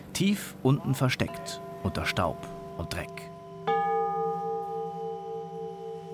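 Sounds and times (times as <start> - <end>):
speech: 0.2 - 3.3
set of tuned altar bells ringing: 1.2 - 6.1.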